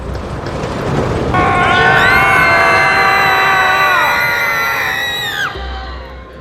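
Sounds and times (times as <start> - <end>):
crowd of roller coaster riders screaming on the drop: 1.4 - 6.4.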